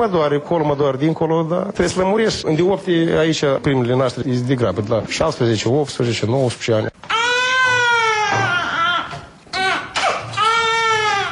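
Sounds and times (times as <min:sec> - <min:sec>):
speech: 0:00.0 - 0:07.1
newborn baby crying in long wavering wails: 0:07.0 - 0:11.3.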